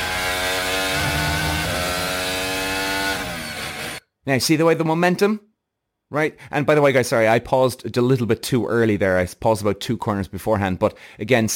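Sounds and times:
Formula 1 car engine screaming at high revs through bends: 0:00.6 - 0:04.0
speech: 0:04.2 - 0:05.5, 0:06.1 - 0:11.5.

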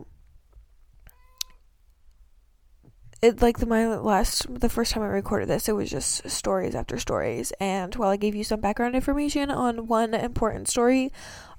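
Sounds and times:
cat meowing: 0:01.1 - 0:01.6
speech: 0:03.2 - 0:11.5.

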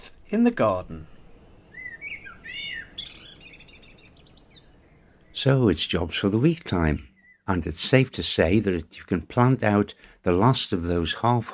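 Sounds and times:
faint outdoor hiss: 0:00.0 - 0:11.5
speech: 0:00.3 - 0:01.1, 0:05.4 - 0:11.5
blackbird singing: 0:01.6 - 0:05.5, 0:07.1 - 0:07.5.

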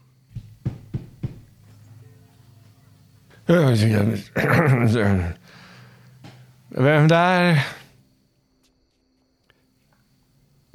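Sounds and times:
low steady hum: 0:00.0 - 0:10.7
soft knocking on a front door: 0:00.3 - 0:01.6
speech: 0:03.5 - 0:05.5, 0:06.7 - 0:07.8.

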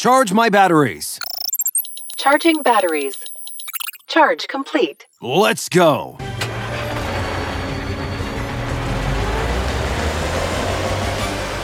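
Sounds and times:
speech: 0:00.0 - 0:01.3, 0:02.2 - 0:03.2, 0:04.1 - 0:06.2
car engine rumbling as the vehicle pulls away: 0:06.2 - 0:11.6
continuous broad road noise: 0:06.2 - 0:11.6.

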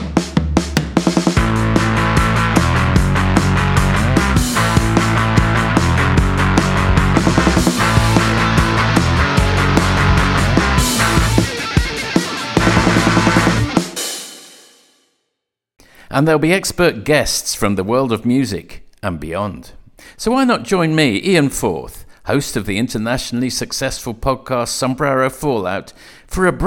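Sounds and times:
podcast musical sting with driving beat and sustained tones: 0:00.1 - 0:14.3
speech: 0:16.2 - 0:26.6.

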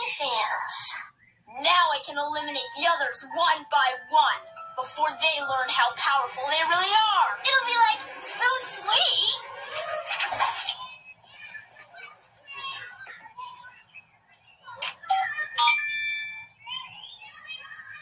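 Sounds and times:
busy sound: 0:00.0 - 0:18.0
speech: 0:02.2 - 0:10.6
phone ringing with a bright chirpy electronic melody: 0:02.4 - 0:08.4, 0:15.1 - 0:16.6.

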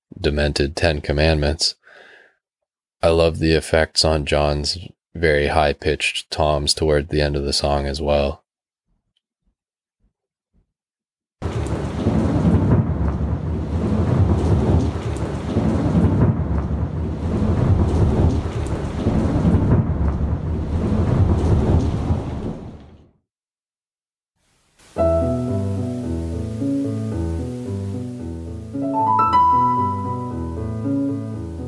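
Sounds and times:
speech: 0:00.2 - 0:01.8, 0:03.0 - 0:08.4
heavy rain: 0:11.4 - 0:22.9, 0:24.4 - 0:31.6
low rolling thunder: 0:11.4 - 0:23.0
soft keyboard music: 0:25.0 - 0:31.6.

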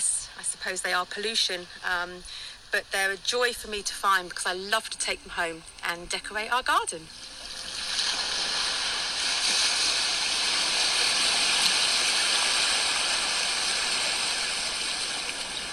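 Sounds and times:
speech: 0:00.4 - 0:07.2
small waves gently rippling onto shore: 0:07.1 - 0:15.7.

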